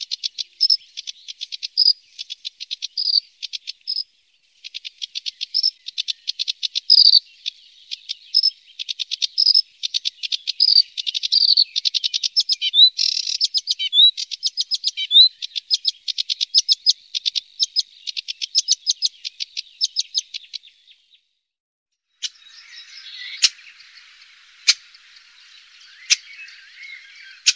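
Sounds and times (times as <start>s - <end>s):
sedge warbler song: 0.0s - 27.5s.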